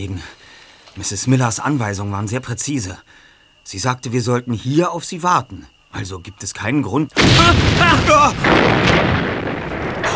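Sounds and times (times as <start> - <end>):
speech: 0.0 - 9.5
heavy explosion in a house: 7.2 - 10.1
rumbling roar after explosion: 7.2 - 10.1.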